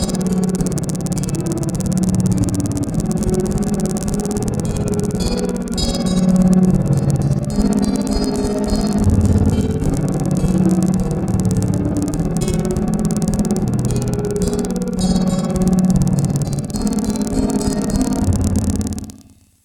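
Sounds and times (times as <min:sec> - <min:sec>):
guitar loop: 0:00.0 - 0:19.6.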